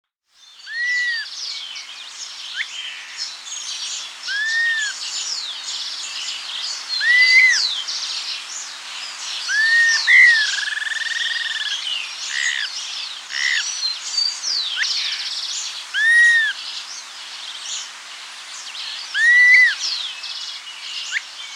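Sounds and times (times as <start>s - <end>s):
Dusky-capped flycatcher Myiarchus tuberculifer atriceps calling: 0.5s - 1.6s, 2.5s - 5.5s, 6.9s - 7.8s, 9.4s - 12.7s, 13.3s - 16.6s, 18.8s - 20.4s.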